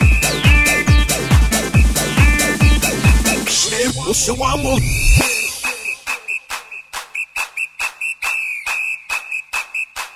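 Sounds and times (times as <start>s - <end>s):
shrill steady whistle being blown: 0.0s - 1.2s, 2.3s - 3.6s, 4.9s - 10.1s
fast regular thumping beat of sharp percussive hits: 0.0s - 10.1s
speech: 4.1s - 5.3s.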